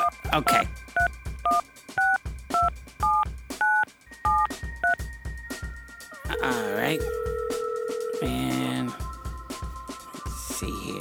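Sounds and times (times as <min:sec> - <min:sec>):
speech: 0:00.4 - 0:00.8, 0:06.9 - 0:07.2
touch-tone beeps of a telephone number being dialed: 0:01.0 - 0:05.0, 0:06.3 - 0:09.0.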